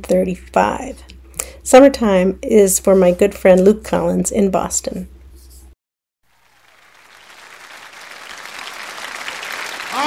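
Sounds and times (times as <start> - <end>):
speech: 0.0 - 5.2
audience applause: 6.4 - 10.0.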